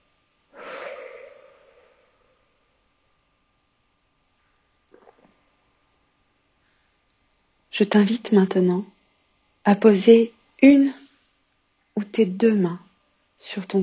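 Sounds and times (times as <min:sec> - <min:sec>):
calm breathing in through the nose and out through the mouth during a relaxation exercise: 0:00.5 - 0:02.8, 0:06.6 - 0:07.1
speech: 0:07.8 - 0:08.9, 0:09.6 - 0:11.0, 0:12.0 - 0:13.8.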